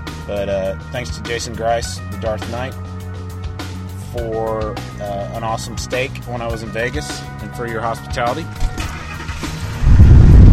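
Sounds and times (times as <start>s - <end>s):
speech: 0.3s - 3.0s, 4.1s - 8.6s
car engine starting and idling: 8.3s - 10.5s.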